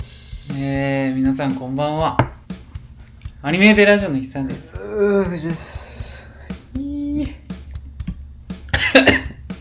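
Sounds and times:
speech: 0.6 - 2.3, 3.4 - 5.8
throat noises: 4.6 - 7.4
person coughing after choking: 8.7 - 9.4.

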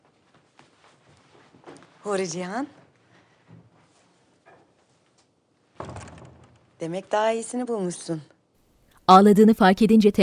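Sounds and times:
speech: 2.0 - 2.8, 6.8 - 8.3, 9.1 - 10.2
room door creaking open: 5.8 - 6.7.

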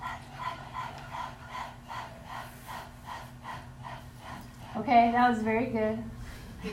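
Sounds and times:
person panting rapidly with the tongue out: 0.0 - 4.9
speech: 4.8 - 6.7.

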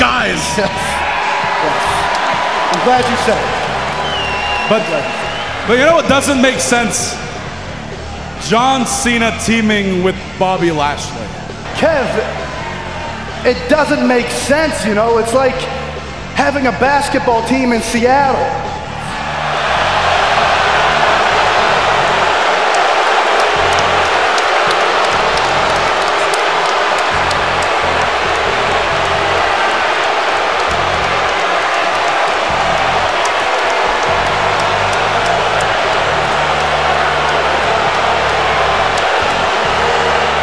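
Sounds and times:
scattered claps in an arena crowd: 0.0 - 5.7, 19.5 - 40.4
large arena crowd roaring and cheering: 0.0 - 8.7, 11.7 - 15.0, 18.9 - 40.4
speech: 0.6 - 0.9, 2.8 - 3.6, 4.7 - 7.2, 8.4 - 12.6, 13.4 - 15.8, 16.4 - 18.7.

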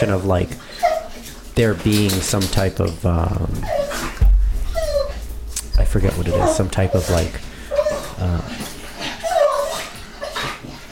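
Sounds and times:
speech: 0.0 - 0.9, 1.6 - 4.1, 5.9 - 7.5, 8.2 - 8.7
constant noise: 0.0 - 10.9
excited puppy whimpering and yipping: 0.6 - 1.4, 3.5 - 5.3, 6.2 - 10.9.

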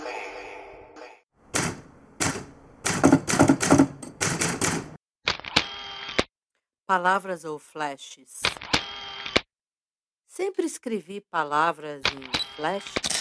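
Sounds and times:
typewriter keystrokes: 1.5 - 5.0
speech: 6.9 - 8.6, 10.4 - 13.2.

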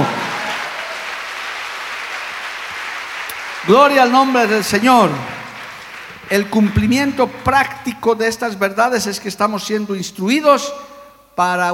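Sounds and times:
audience applause: 0.0 - 7.9
speech: 3.7 - 5.4, 6.3 - 11.7.

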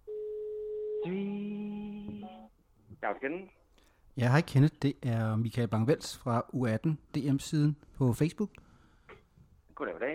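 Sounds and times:
telephone ringing tone while calling: 0.1 - 2.5
speech: 1.0 - 1.5, 3.0 - 3.6, 4.2 - 8.6, 9.8 - 10.1.

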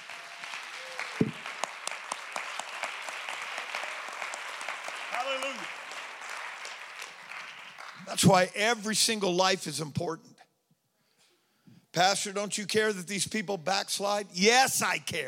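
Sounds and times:
audience applause: 0.0 - 8.5
speech: 8.2 - 10.4, 12.0 - 15.2.

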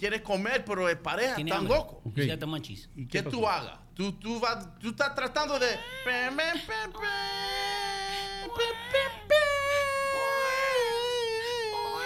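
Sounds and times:
speech: 0.0 - 9.2
babies wailing in the background: 5.6 - 12.0.

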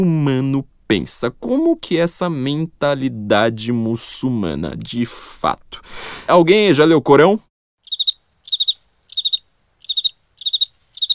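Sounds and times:
speech: 0.0 - 7.5
crickets chirping: 7.8 - 11.1.

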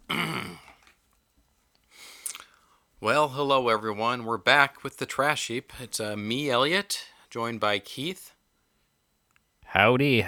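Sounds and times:
loud gravelly throat clearing: 0.0 - 0.8
speech: 3.0 - 8.4, 9.7 - 10.2.

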